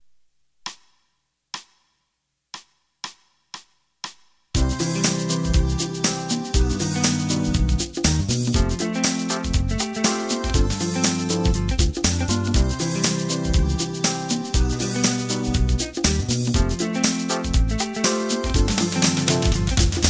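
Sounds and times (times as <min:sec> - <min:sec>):
smooth jazz: 0:04.6 - 0:20.0.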